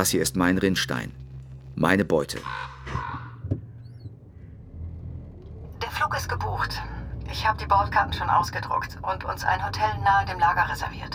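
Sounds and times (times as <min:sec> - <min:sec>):
speech: 0:00.0 - 0:01.2, 0:01.8 - 0:03.1, 0:06.1 - 0:11.1
low rumble of traffic: 0:00.0 - 0:11.1
raven cawing: 0:02.3 - 0:04.5.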